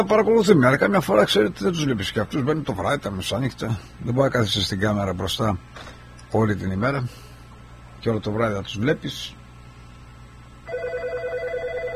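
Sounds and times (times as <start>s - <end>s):
speech: 0.0s - 7.2s, 8.0s - 9.4s
low hum: 0.0s - 11.9s
telephone ringing: 10.6s - 11.9s.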